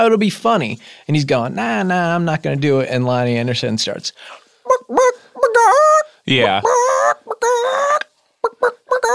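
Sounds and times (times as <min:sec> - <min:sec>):
speech: 0:00.0 - 0:09.1
woman imitating chicken clucking and squawking: 0:04.7 - 0:06.0, 0:06.6 - 0:09.1.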